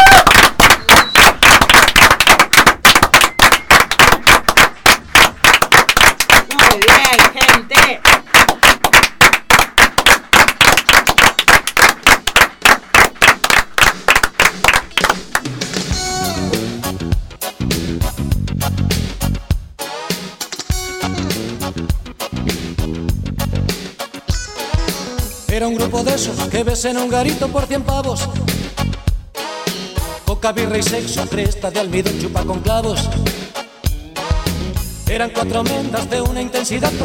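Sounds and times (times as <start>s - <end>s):
audience clapping: 0.0s - 15.7s
music: 0.0s - 37.0s
speech: 25.9s - 28.7s, 30.4s - 33.4s, 35.1s - 37.0s.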